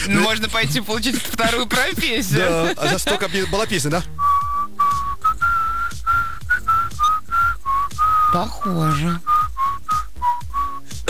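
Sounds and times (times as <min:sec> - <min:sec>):
laughter: 0:00.0 - 0:04.1
speech: 0:00.0 - 0:04.2, 0:08.3 - 0:09.3
person whistling a TV series theme tune: 0:04.1 - 0:11.0.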